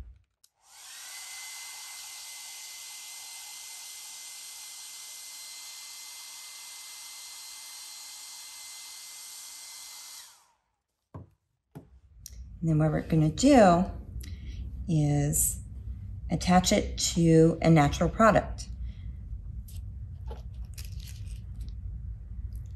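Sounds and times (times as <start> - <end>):
hair dryer blowing to dry craft medium: 0.5 - 10.6
speech: 12.6 - 14.0, 14.9 - 15.6, 16.3 - 18.7.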